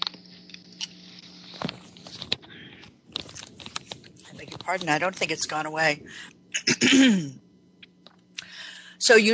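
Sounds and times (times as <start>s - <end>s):
speech: 4.7s - 7.4s, 9.1s - 9.3s
harsh coughs: 6.6s - 7.4s.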